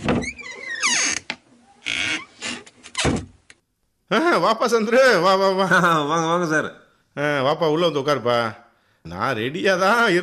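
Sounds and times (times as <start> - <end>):
dull thunks and knocks of a door being handled: 0.0 - 0.5, 3.0 - 3.4
door creaking and groaning as it swings open: 0.0 - 3.4
speech: 4.1 - 10.2.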